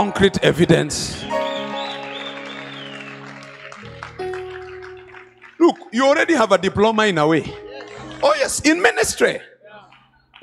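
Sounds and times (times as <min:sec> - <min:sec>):
speech: 0:00.0 - 0:01.4, 0:05.7 - 0:07.6, 0:08.2 - 0:09.5
sustained musical tones: 0:01.3 - 0:05.4
crowd clapping: 0:01.3 - 0:09.0, 0:09.8 - 0:10.4.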